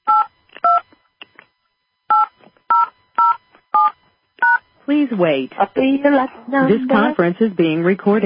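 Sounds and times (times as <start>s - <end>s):
telephone keypad two-tone beeps entering a PIN on a conference-call line: 2.1s - 4.6s
speech: 4.9s - 8.2s.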